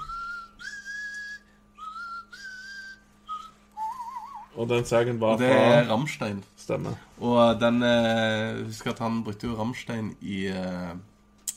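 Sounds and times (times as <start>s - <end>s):
man whistling a melodic tune: 0.0s - 4.6s
speech: 4.6s - 11.1s.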